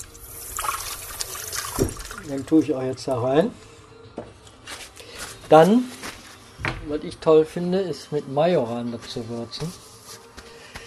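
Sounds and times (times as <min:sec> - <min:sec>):
small splashes in a pot of lentil soup: 0:00.0 - 0:02.6
drops of liquid seasoning dripping into a pot of lentil soup: 0:00.0 - 0:02.7
speech: 0:01.8 - 0:03.7, 0:05.5 - 0:06.0, 0:06.8 - 0:09.8.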